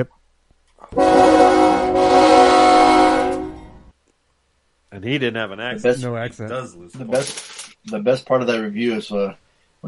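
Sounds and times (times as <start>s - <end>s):
loud sustained train horn blaring: 0.9s - 3.9s
speech: 5.0s - 9.8s.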